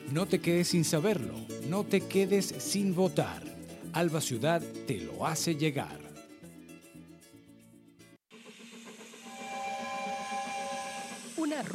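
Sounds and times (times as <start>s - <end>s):
music: 0.0s - 11.7s
speech: 0.1s - 6.0s
hissing rush of steam from a steam train: 8.3s - 11.7s.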